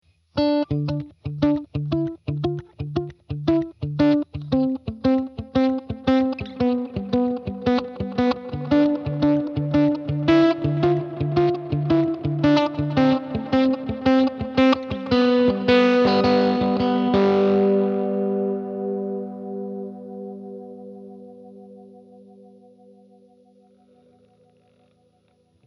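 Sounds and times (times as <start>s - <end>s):
FX guitar through Galaxy Tape Echo: 0.4s - 25.6s.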